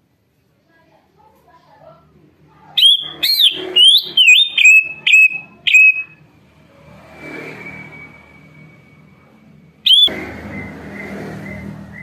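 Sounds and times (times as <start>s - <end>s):
caged leafbird singing loud clear whistled notes: 2.8s - 6.2s, 9.9s - 12.0s.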